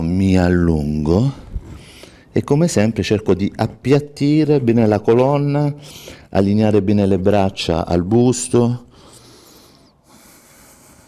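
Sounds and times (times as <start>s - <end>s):
speech: 0.0s - 1.5s, 2.3s - 8.9s
person breathing while exercising: 1.4s - 2.3s, 5.8s - 6.3s, 8.9s - 11.0s.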